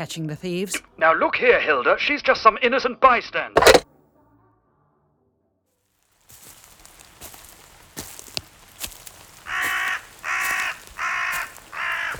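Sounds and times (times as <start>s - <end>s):
speech: 0.0s - 3.8s
sharp outdoor clicks and taps: 3.6s - 3.8s
crow cawing harshly: 9.4s - 12.1s.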